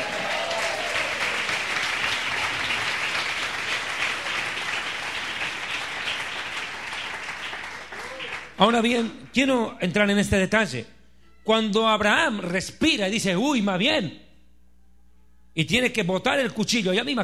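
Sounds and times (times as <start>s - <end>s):
audience applauding: 0.0s - 9.1s
speech: 8.6s - 14.2s, 15.6s - 17.2s.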